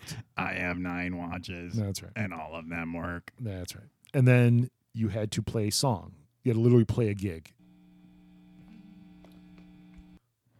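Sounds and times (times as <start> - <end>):
speech: 0.4 - 7.6
electrical hum from 319 guitar pedals plugged into five Marshall stacks: 7.5 - 10.2.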